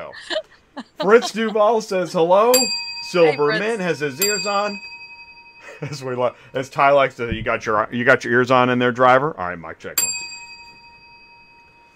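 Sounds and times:
laughter: 0.0 - 2.1
speech: 0.0 - 4.9, 5.8 - 10.3
bell ringing with a single struck tone: 2.5 - 7.1, 10.0 - 11.9.

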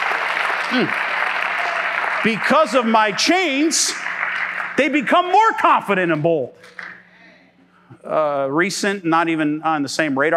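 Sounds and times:
crowd applause: 0.0 - 5.6
speech: 0.7 - 1.1, 2.2 - 4.0, 4.8 - 6.8, 8.0 - 10.3.

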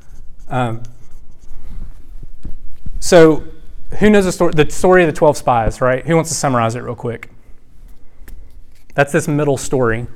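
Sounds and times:
handwriting of a single word scratching across a writing surface: 0.0 - 2.0
speech: 0.5 - 1.0, 3.0 - 7.3, 9.0 - 10.1.

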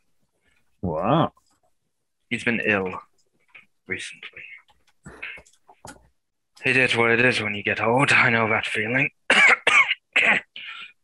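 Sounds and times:
speech: 0.8 - 1.4, 2.3 - 3.1, 3.9 - 4.5, 6.6 - 9.2
harsh raspy coughs: 9.3 - 10.9.

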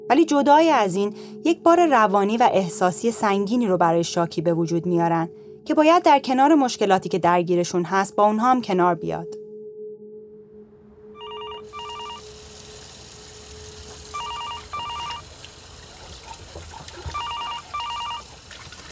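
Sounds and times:
speech: 0.1 - 9.4
telephone ringing with an electronic trill: 11.2 - 12.6, 14.1 - 15.4, 17.1 - 18.4.

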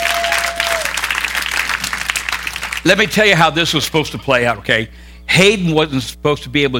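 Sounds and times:
dense audience applause for a man: 0.0 - 2.9
speech: 2.8 - 6.7.

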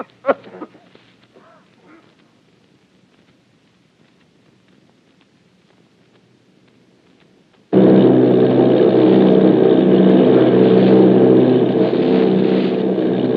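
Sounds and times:
army bombing plane engines droning off Bayonne New Jersey: 7.7 - 13.3.

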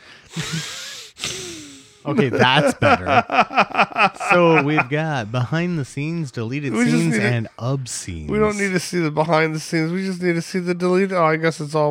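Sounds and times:
heavy loud mouth breathing against a microphone: 0.0 - 2.1
laughter: 0.3 - 1.0, 2.1 - 5.6, 6.7 - 7.4
speech: 0.4 - 0.8, 2.0 - 11.9.

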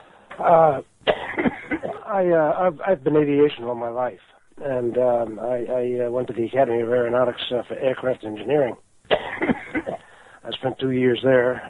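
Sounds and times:
speech: 0.4 - 9.2, 9.8 - 11.6
person coughing: 1.1 - 2.1, 9.1 - 10.0.

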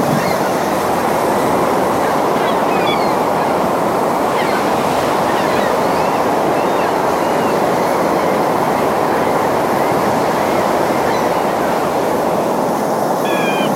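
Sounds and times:
ocean surf roar: 0.0 - 13.7
faint high bird chirps: 13.2 - 13.7.

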